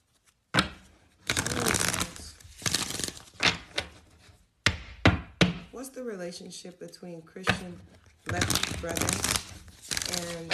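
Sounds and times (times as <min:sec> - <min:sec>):
tarot cards being shuffled and drawn: 0:00.0 - 0:04.4, 0:07.5 - 0:10.5
speech: 0:05.8 - 0:09.5, 0:10.2 - 0:10.5.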